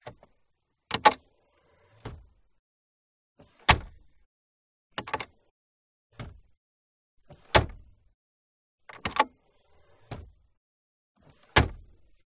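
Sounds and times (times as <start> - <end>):
2000 Jaguar S-Type glove compartment: 0.9 - 1.3, 3.4 - 4.2, 5.0 - 5.4, 7.3 - 8.0, 8.9 - 10.4, 11.3 - 12.2.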